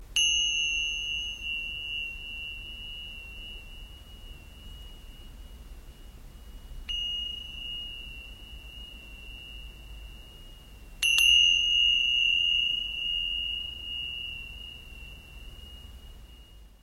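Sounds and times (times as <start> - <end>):
cymbal: 0.0 - 16.8.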